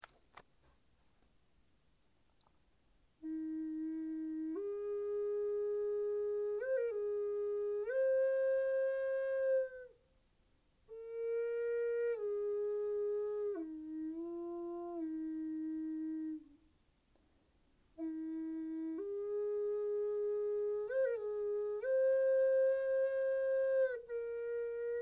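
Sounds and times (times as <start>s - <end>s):
flute melody: 3.2s - 10.0s, 10.9s - 16.6s, 18.0s - 25.0s.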